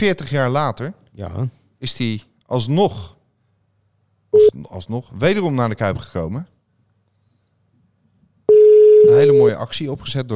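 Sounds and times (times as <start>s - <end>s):
speech: 0.0s - 3.2s, 4.4s - 6.5s, 9.1s - 10.3s
ringing tone of an outgoing telephone call: 8.5s - 9.4s.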